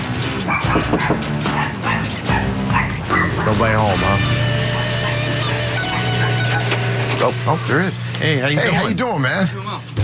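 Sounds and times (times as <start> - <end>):
dog barking behind a closed door inside a house: 0.4 - 3.7, 4.5 - 6.5
speech: 0.5 - 1.4, 3.5 - 4.4, 7.2 - 9.6
person knocking on a door: 0.7 - 1.4.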